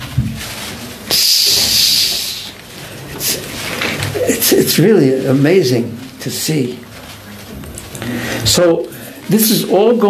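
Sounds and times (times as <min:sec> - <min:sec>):
person imitating the rattling hiss of peacock tail feathers: 0:01.1 - 0:02.5
speech: 0:04.5 - 0:06.9, 0:08.0 - 0:10.0.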